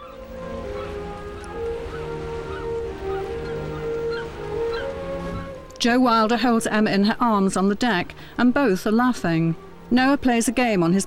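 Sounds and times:
faint bird cries: 0.0 - 5.5
water rushing: 0.0 - 5.8
boat engine droning: 0.0 - 11.0
speech: 5.8 - 11.0.

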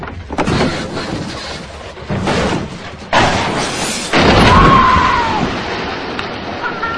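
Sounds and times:
car plunging over quarry edge and crashing into water: 2.5 - 6.9.

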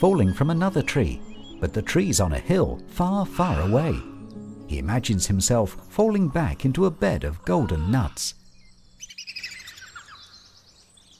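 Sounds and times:
speech: 0.0 - 4.1, 4.7 - 8.4
green bird's shrill laughing call: 9.0 - 10.6.

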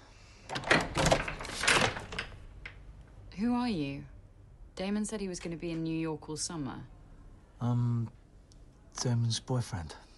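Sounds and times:
chained door being pulled ajar: 0.5 - 2.8
speech: 3.4 - 4.1, 4.8 - 7.0, 7.6 - 8.2, 9.0 - 10.1.

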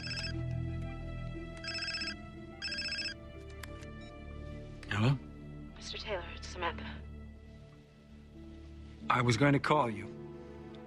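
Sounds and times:
telephone ringing in trilling bursts: 0.0 - 0.4, 1.6 - 3.2
speech: 5.0 - 5.3, 5.9 - 7.1, 9.1 - 10.2.

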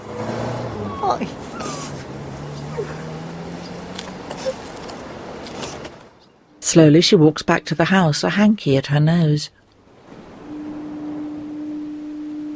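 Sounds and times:
car engine humming as the car drives out past a gate: 0.0 - 9.0, 9.6 - 12.5
murmuring: 0.8 - 4.7
speech: 1.1 - 1.9, 6.7 - 9.6.

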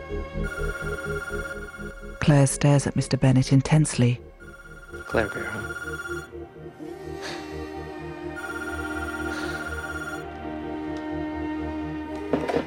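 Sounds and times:
speech: 0.1 - 4.3, 4.9 - 9.9
telephone ringing with a steady electronic trill: 0.4 - 2.6, 4.4 - 6.3, 8.4 - 10.3.

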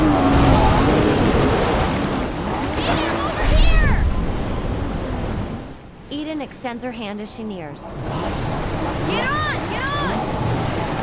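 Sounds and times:
jet ski engine roaring over open water: 0.0 - 5.6, 7.9 - 11.0
speech: 6.6 - 9.6.

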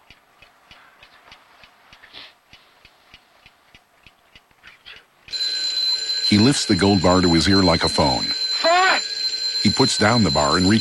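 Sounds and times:
round alarm clock ticking: 5.3 - 10.7
speech: 6.3 - 8.4, 9.6 - 10.7.

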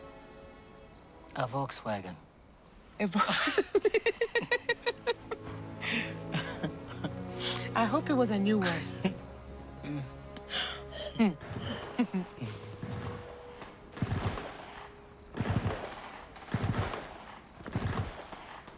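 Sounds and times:
speech: 1.4 - 2.3, 3.0 - 4.8, 7.8 - 9.2, 9.9 - 10.2, 11.2 - 12.6
laughter: 3.2 - 7.6, 8.6 - 9.2, 11.0 - 12.7
rapid gunfire bursts: 13.9 - 18.7.

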